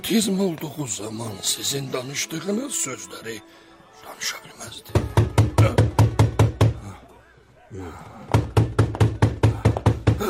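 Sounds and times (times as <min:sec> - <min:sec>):
speech: 0:00.0 - 0:06.0, 0:07.7 - 0:08.8
loud rapid knocking on a door: 0:04.9 - 0:06.8, 0:08.3 - 0:10.2.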